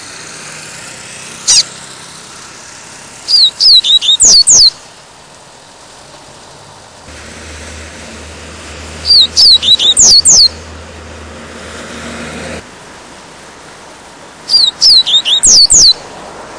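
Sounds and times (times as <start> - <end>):
Double-collared Seedeater song: 1.5 - 1.7, 3.3 - 4.8, 9.0 - 10.6, 14.5 - 16.0
low hum: 7.0 - 12.7.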